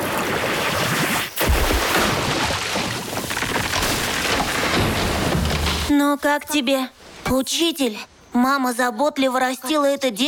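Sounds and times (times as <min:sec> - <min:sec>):
magic water ball gushing water: 0:00.0 - 0:04.7
speech: 0:06.0 - 0:10.2.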